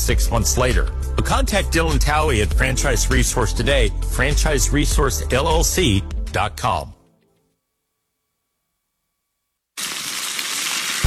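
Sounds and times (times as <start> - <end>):
speech: 0.1 - 7.0
egg frying in a hot pan: 9.8 - 11.0.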